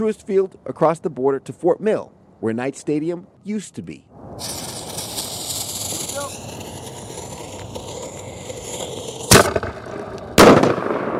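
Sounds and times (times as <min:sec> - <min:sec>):
speech: 0:00.0 - 0:04.7
loud sharp fireworks blasts with decay: 0:04.2 - 0:11.1.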